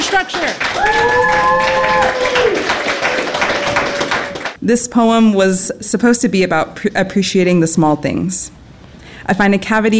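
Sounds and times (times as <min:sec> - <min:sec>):
audience clapping: 0:00.0 - 0:04.6
speech: 0:00.1 - 0:02.9, 0:04.6 - 0:08.6, 0:09.3 - 0:09.9.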